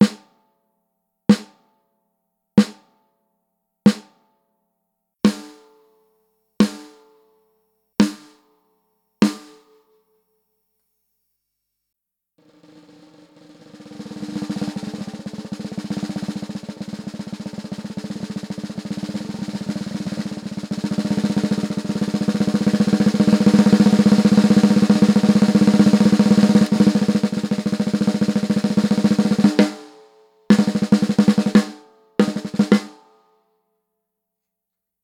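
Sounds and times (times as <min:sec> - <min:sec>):
oak 14x5 snare drum: 0:00.0 - 0:00.4, 0:01.3 - 0:01.6, 0:02.6 - 0:02.9, 0:03.9 - 0:04.2, 0:05.3 - 0:05.8, 0:06.6 - 0:07.1, 0:08.0 - 0:08.4, 0:09.2 - 0:09.8, 0:12.4 - 0:33.2.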